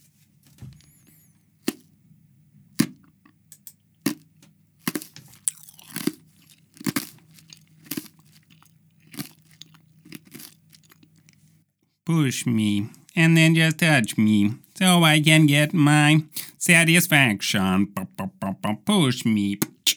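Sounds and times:
faint low hum: 0.0 - 19.9
someone chewing an ice cube: 1.6 - 1.9, 4.0 - 11.5
speech: 12.1 - 18.0, 18.9 - 19.7.

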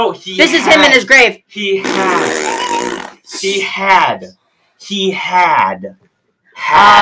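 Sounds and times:
speech: 0.0 - 6.0, 6.6 - 7.0
voice making a mouth imitation of farting: 1.8 - 3.3.

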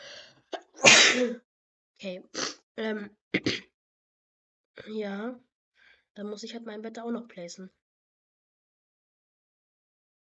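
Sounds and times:
person sneezing: 0.6 - 1.4, 2.4 - 2.6, 3.4 - 3.6
speech: 1.2 - 3.7, 4.8 - 5.5, 6.2 - 7.8.

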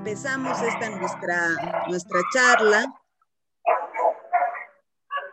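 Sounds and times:
speech: 0.2 - 3.0
dog barking: 0.4 - 2.9, 3.6 - 5.3.

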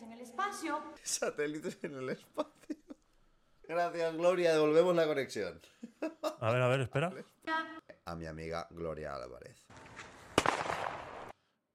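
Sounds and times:
speech: 0.4 - 2.8, 3.7 - 9.9
laughter: 1.6 - 3.0, 5.8 - 7.2
explosion sound effect played from a video: 9.9 - 11.3.

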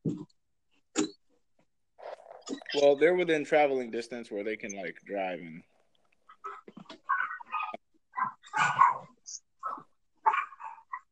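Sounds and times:
speech: 2.7 - 5.7
dog barking: 7.1 - 11.1.

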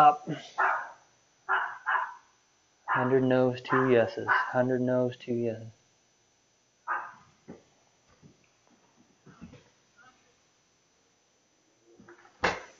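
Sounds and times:
speech: 0.0 - 0.8, 3.0 - 5.8
guard dog barking behind a closed door: 0.6 - 4.6, 6.9 - 7.3.

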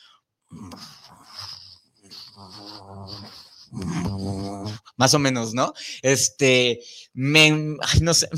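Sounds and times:
person imitating a cat purring with low rumbling voice: 0.5 - 4.9
speech: 5.0 - 8.3.

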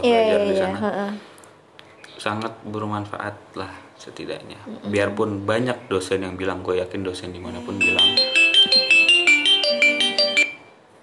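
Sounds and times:
speech: 0.0 - 1.3, 2.2 - 9.0
phone ringtone with bright melodic electronic notes: 7.7 - 10.8.

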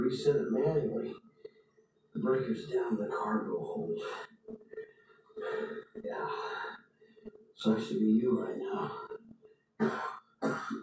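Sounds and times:
speech: 0.1 - 1.3, 2.1 - 4.8, 5.4 - 9.2, 9.8 - 10.8
person coughing: 9.8 - 10.8.

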